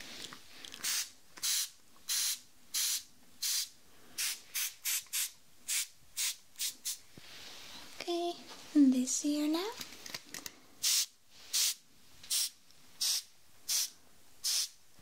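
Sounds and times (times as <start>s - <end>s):
spray bottle squeezed beside the ear during ear cleaning: 0.8s - 7.0s, 10.8s - 14.8s
speech: 9.1s - 9.8s.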